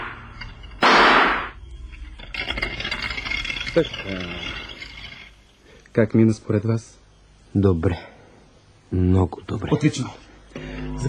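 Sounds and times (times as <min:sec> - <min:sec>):
single pistol shot: 0:00.8 - 0:01.5
speech: 0:03.8 - 0:04.6, 0:06.0 - 0:07.0, 0:07.5 - 0:08.1, 0:08.9 - 0:11.0.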